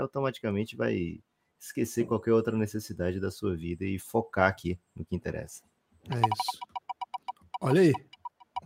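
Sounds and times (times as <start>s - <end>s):
speech: 0.0s - 6.7s, 7.6s - 8.1s
roulette wheel spinning with ticking clicks: 6.2s - 8.6s.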